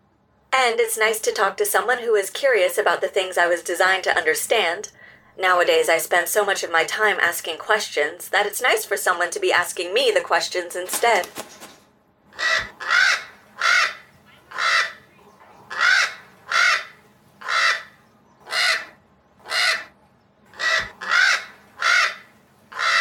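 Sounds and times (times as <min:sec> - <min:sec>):
speech: 0:00.6 - 0:11.7
crow cawing: 0:12.4 - 0:15.1, 0:15.7 - 0:22.9.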